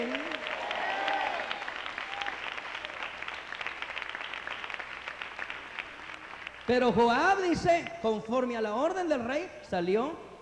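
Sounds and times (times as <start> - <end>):
audience applauding: 0.0 - 6.9
speech: 6.7 - 10.3.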